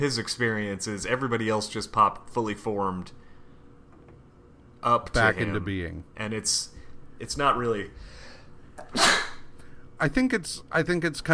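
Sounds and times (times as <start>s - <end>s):
speech: 0.0s - 3.2s, 4.8s - 8.2s, 8.9s - 9.2s, 10.0s - 11.3s
person sneezing: 8.8s - 9.5s.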